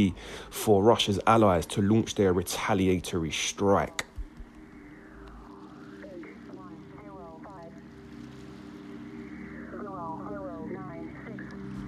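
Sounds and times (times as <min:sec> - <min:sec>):
speech: 0:00.0 - 0:04.1
shortwave radio static hiss: 0:00.0 - 0:11.8
droning buzzer tone from a Russian shortwave radio station: 0:04.4 - 0:11.8.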